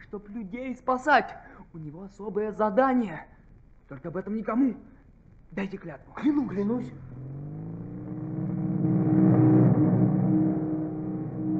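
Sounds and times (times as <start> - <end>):
speech: 0.1 - 7.1
group of motorcycle engines revving past: 6.9 - 11.5.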